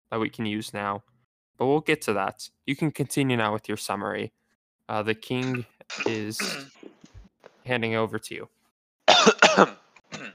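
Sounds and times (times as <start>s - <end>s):
speech: 0.1s - 6.9s, 7.7s - 8.6s, 9.6s - 9.8s
person clearing throat: 5.4s - 7.0s, 9.1s - 10.3s.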